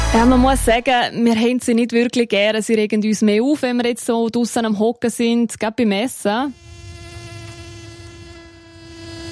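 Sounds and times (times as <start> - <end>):
speech: 0.1 - 6.7
wasps buzzing: 6.5 - 9.2.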